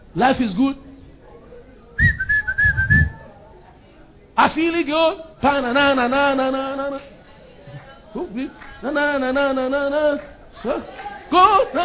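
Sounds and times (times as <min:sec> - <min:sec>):
speech: 0:00.2 - 0:00.9, 0:04.4 - 0:07.1, 0:08.2 - 0:11.8
single sustained note blown on a whistle: 0:02.0 - 0:03.3
soft low thumps: 0:02.0 - 0:03.3.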